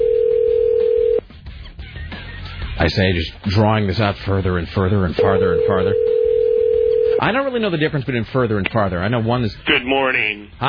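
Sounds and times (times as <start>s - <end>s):
telephone dial tone: 0.0s - 1.2s, 5.6s - 7.2s
speech: 2.8s - 6.1s, 7.2s - 10.6s.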